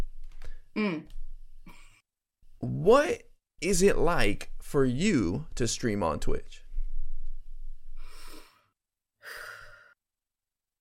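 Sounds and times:
speech: 0.8 - 1.2, 2.8 - 6.6
deep breath taken to calm down: 8.0 - 10.0.

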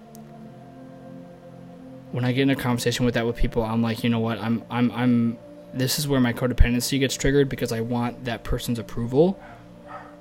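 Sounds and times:
speech: 2.1 - 9.6
faint dog barking: 9.4 - 10.1.

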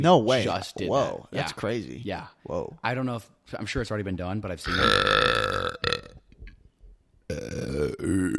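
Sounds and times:
speech: 0.0 - 5.6
close-mic burps: 4.7 - 6.3, 7.3 - 8.3.

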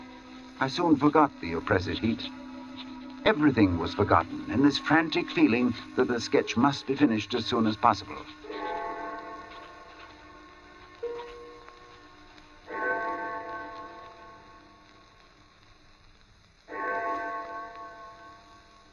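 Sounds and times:
distant church clock bell tolling: 0.0 - 9.9, 12.6 - 14.6, 16.7 - 18.7
speech: 0.6 - 2.4, 3.2 - 8.4.

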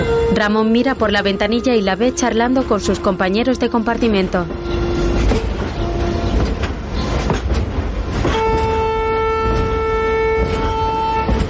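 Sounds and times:
high steady horn or whistle tone: 0.0 - 6.7, 8.2 - 11.4
train rumble and clatter pulling out of a station: 0.0 - 11.4
speech: 0.4 - 5.5.

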